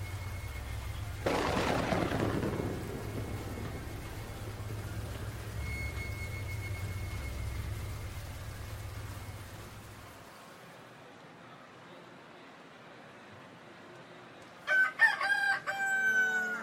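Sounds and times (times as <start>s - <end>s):
low rumbling backdrop: 0.0s - 10.1s
steady rain: 0.0s - 13.6s
wind: 0.0s - 16.6s
loud thunder crack: 0.8s - 10.0s.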